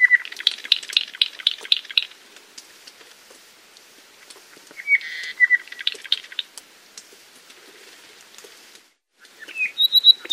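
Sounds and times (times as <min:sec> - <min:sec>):
apapane giving clear whistle, ticking notes and ringing high notes: 0:00.0 - 0:02.1, 0:04.2 - 0:07.1, 0:09.2 - 0:10.3.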